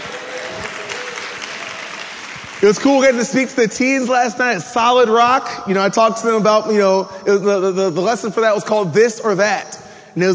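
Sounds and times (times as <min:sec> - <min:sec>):
crowd applauding: 0:00.0 - 0:03.8
speech: 0:02.6 - 0:10.3.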